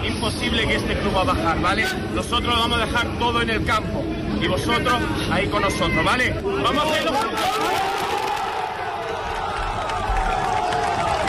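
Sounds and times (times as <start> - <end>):
speech: 0.2 - 8.1
large crowd of football fans cheering and clapping: 7.4 - 11.2.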